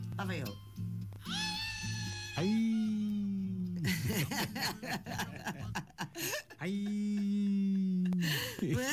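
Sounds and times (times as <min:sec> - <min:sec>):
speech: 0:00.2 - 0:00.7, 0:02.4 - 0:02.8, 0:08.6 - 0:08.9
piercing high-pitched sapucai traditional shout in recorded music: 0:01.3 - 0:03.2
laughter: 0:03.8 - 0:08.9.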